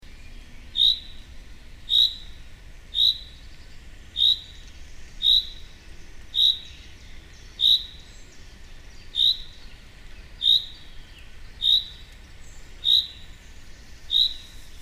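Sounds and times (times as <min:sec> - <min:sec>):
faint hiss: 0:00.2 - 0:14.8
common chaffinch Fringilla coelebs calling: 0:00.6 - 0:14.8.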